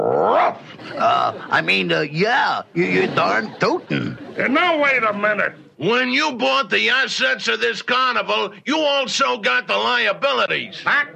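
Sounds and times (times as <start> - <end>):
man imitating a dog growling and barking: 0.0 - 1.4
laughter: 0.6 - 5.7
speech: 1.0 - 11.1.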